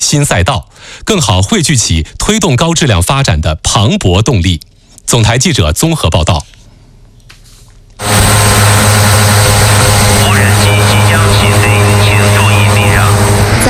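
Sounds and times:
speech: 0.1 - 6.6
inspection drone propellers buzzing at an oilfield in China: 8.0 - 13.6.

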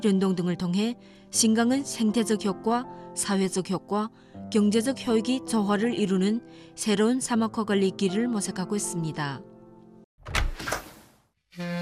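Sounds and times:
speech: 0.0 - 9.5, 11.6 - 11.8
window being opened at home: 10.2 - 11.1.

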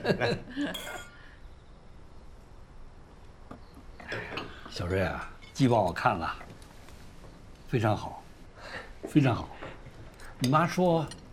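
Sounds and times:
speech: 0.0 - 1.1, 4.7 - 6.4, 7.7 - 9.6, 10.4 - 11.2
glasses clinking together in a toast at a family dinner: 0.7 - 1.2.

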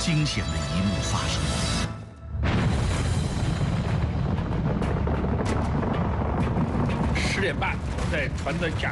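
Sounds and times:
speech: 0.0 - 2.0, 7.4 - 8.9
crackling ice debris: 2.4 - 8.9
loud boom of collapsing ice sheet: 2.4 - 8.9.

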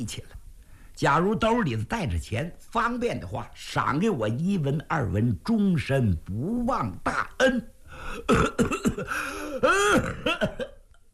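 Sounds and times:
speech: 0.0 - 0.4, 1.0 - 10.7
man's voice imitating a street martial-arts performer's coughing fit: 7.2 - 10.8.

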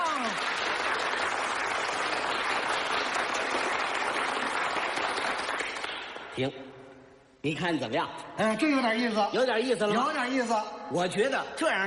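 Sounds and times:
loud sustained crowd applause: 0.0 - 6.3
speech: 6.4 - 6.6, 7.4 - 11.8.

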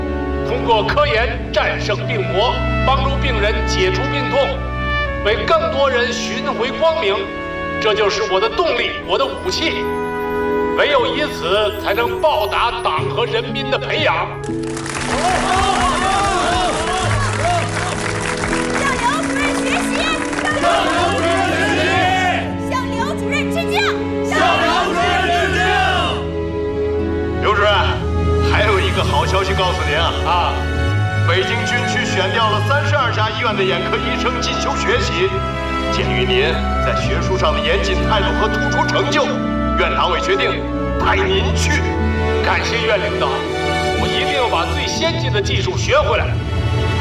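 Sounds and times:
steady musical background: 0.0 - 46.9
speech: 0.6 - 10.0, 10.8 - 15.8, 28.5 - 30.7, 31.3 - 46.9
crowd applauding for a doctor: 14.4 - 22.5.

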